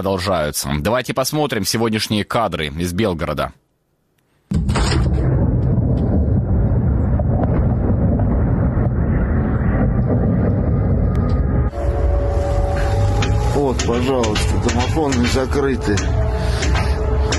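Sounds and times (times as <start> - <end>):
speech: 0.0 - 3.6, 13.7 - 16.8
loud explosion during a missile and drone attack on Belgorod Russia: 4.5 - 11.8
long heavy rumbling roar after explosion: 4.7 - 17.3.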